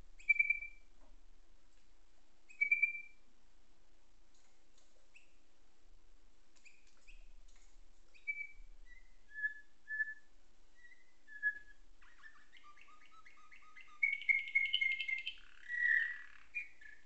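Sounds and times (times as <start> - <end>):
faint low hum: 0.0 - 17.0
Atlantic canary singing nightingale-tutored song: 0.2 - 0.9, 2.5 - 3.2, 8.1 - 17.0.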